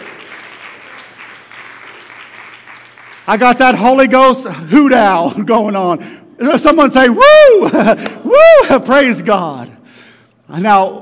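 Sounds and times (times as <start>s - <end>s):
crowd applauding in praise: 0.0s - 4.1s
speech: 3.3s - 9.8s, 10.5s - 11.0s.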